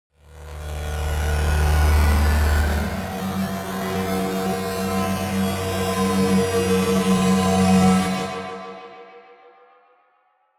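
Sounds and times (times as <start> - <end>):
simple swell bass: 0.6 - 8.2.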